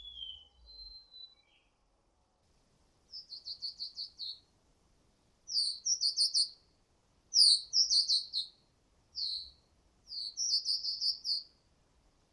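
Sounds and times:
whistling thrush whistled song used for luring: 0.0 - 1.8, 3.1 - 4.4, 5.5 - 6.6, 7.3 - 8.6, 9.2 - 11.6.

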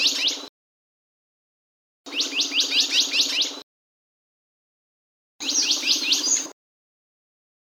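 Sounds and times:
chestnut munia song of high upswept chirp notes: 0.0 - 0.5, 2.1 - 3.6, 5.4 - 6.6.

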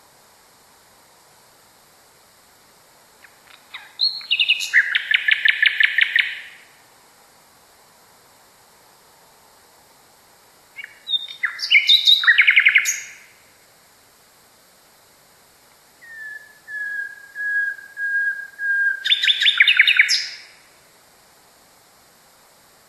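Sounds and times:
common nightingale singing: 3.2 - 6.7, 10.7 - 13.4, 16.0 - 20.7.

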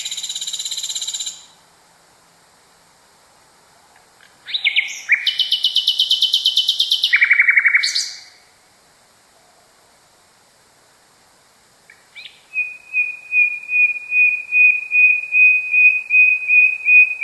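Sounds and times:
nightingale song: 0.0 - 1.7, 3.8 - 10.3, 11.8 - 17.2.

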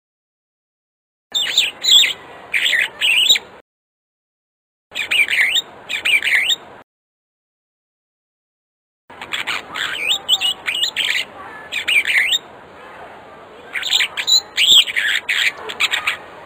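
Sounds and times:
African starling singing with whistled notes: 1.3 - 3.5, 4.9 - 6.6, 9.3 - 12.5, 13.7 - 16.3.

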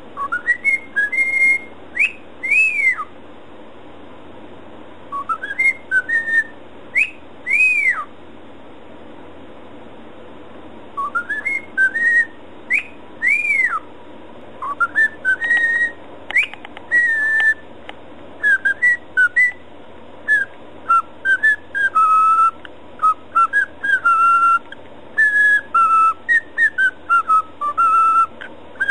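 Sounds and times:
cockatiel whistling a tune: 0.2 - 3.1, 5.1 - 8.1, 11.0 - 13.9, 14.6 - 17.6, 18.4 - 19.6, 20.2 - 28.8.

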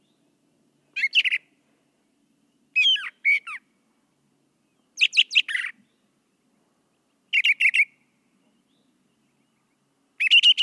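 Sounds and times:
brown thrasher song bursts: 0.9 - 1.6, 2.4 - 3.7, 4.6 - 10.6.

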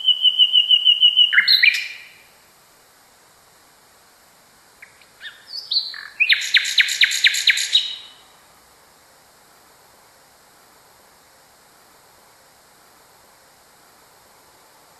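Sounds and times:
common nightingale song: 0.0 - 2.5, 4.6 - 8.6.

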